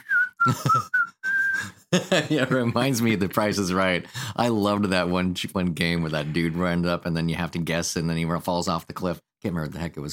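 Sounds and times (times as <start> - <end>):
person whistling a tune: 0.0 - 1.8
laughter: 0.4 - 1.0, 1.6 - 3.0
speech: 0.4 - 1.0, 1.9 - 10.1.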